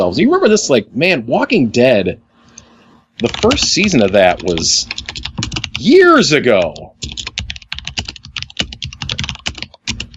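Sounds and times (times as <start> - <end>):
speech: 0.0 - 2.2, 3.2 - 7.3
typing on a computer keyboard: 3.2 - 5.8, 6.6 - 10.1.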